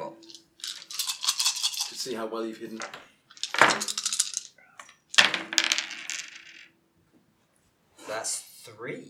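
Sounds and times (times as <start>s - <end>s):
dice rattling and clattering across a hard tabletop: 0.0s - 6.7s
speech: 2.0s - 3.2s, 8.1s - 9.0s.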